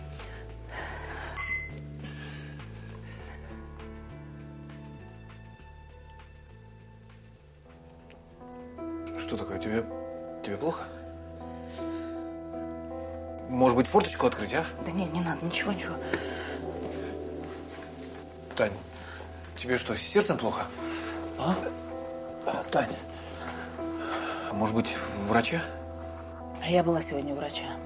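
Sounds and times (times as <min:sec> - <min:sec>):
music: 0:00.0 - 0:27.8
ring clinking in a champagne glass: 0:01.4 - 0:01.7
speech: 0:09.3 - 0:11.0, 0:13.5 - 0:16.5, 0:18.6 - 0:18.9, 0:19.6 - 0:21.7, 0:22.7 - 0:23.0, 0:24.6 - 0:25.8, 0:26.7 - 0:27.8.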